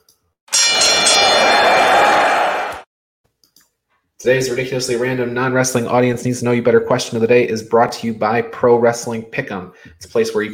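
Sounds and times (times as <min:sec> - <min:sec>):
wrestling ring bell clanging: 0:00.5 - 0:02.6
speech: 0:04.2 - 0:10.5.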